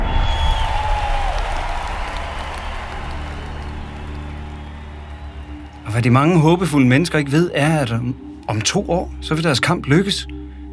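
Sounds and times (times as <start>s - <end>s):
whistles: 0.0s - 6.7s
applause: 0.0s - 7.2s
large crowd cheering: 0.0s - 8.2s
speech: 6.0s - 10.4s.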